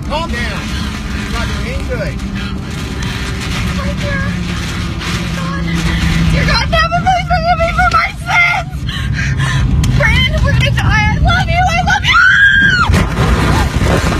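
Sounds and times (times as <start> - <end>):
tornado slamming into a car and flipping it over: 0.0 - 14.1
speech: 1.4 - 2.9, 3.8 - 4.8, 10.5 - 12.9
people screaming and crying out frantically: 11.9 - 13.9.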